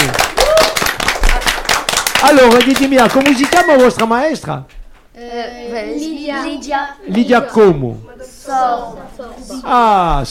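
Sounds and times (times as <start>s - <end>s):
children applauding their teacher: 0.0s - 4.3s
speech: 2.2s - 10.3s.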